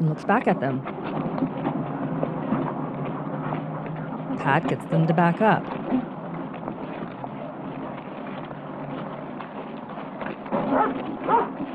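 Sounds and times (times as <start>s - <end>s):
noisy outdoor background: 0.0s - 11.7s
speech: 0.1s - 1.2s, 4.4s - 6.1s
dog barking: 10.7s - 11.5s.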